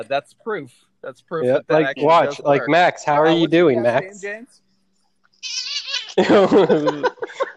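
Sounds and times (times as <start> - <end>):
speech: 0.0 - 4.6, 6.2 - 7.4
cat meowing: 5.4 - 6.2
laughter: 6.1 - 7.5.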